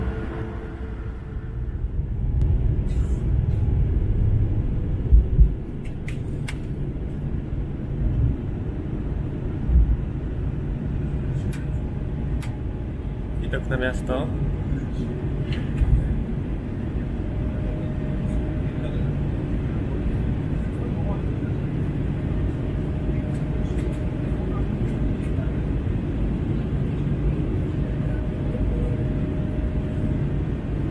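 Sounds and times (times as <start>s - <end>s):
airplane engine drone in the cabin during flight: 0.0s - 30.8s
speech: 13.7s - 14.4s
faint voices in an airplane cabin: 14.6s - 30.3s.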